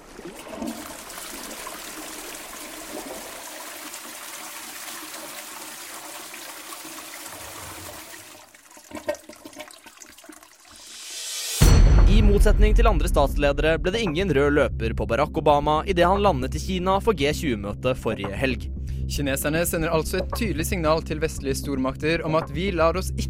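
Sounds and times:
toilet flushing with a rush of water: 0.0s - 11.4s
speech: 12.3s - 23.2s.

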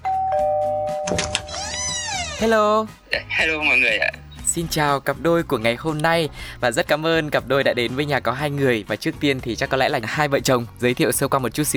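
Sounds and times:
doorbell ringing with an electronic chime: 0.0s - 1.6s
speech: 2.4s - 11.7s.

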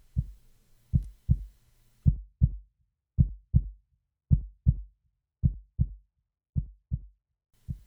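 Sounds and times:
low heartbeat thumping in lub-dub beats: 0.0s - 2.6s, 3.2s - 6.0s, 7.7s - 7.8s.

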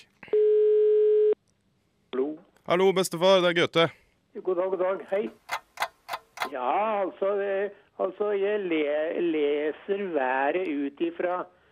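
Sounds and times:
telephone tone while calling: 0.3s - 1.4s
speech: 2.7s - 5.5s, 6.5s - 11.6s.

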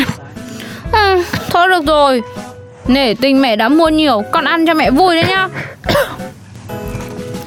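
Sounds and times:
speech: 1.8s - 6.2s
single harsh throaty cough: 5.2s - 6.3s.

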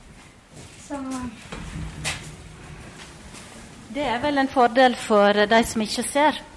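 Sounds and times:
automatic door opening with mechanical hum and clunking: 1.4s - 5.9s
speech: 3.9s - 6.5s.

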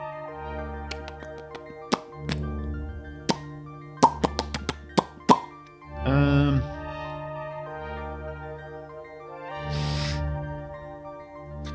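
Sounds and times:
steady tonal background: 0.0s - 11.7s
wet plops and taps: 3.3s - 5.6s.

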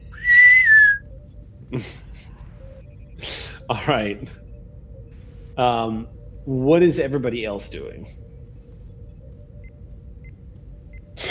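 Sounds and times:
person whistling a short note: 0.1s - 1.0s
speech: 1.7s - 2.1s, 3.7s - 4.4s, 5.6s - 8.3s.

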